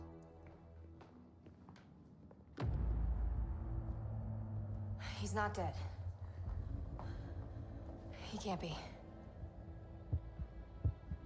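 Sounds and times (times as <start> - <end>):
quiet hum: 0.0 - 11.2
faint heartbeat: 2.6 - 11.2
speech: 5.2 - 6.0, 8.3 - 9.0.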